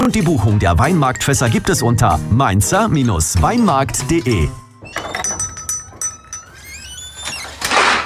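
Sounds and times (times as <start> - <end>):
speech: 0.1 - 5.3
metal utensils clinking and rattling inside a drawer: 3.9 - 6.7
kitchen drawer sliding open with a rolling scrape: 7.0 - 8.0.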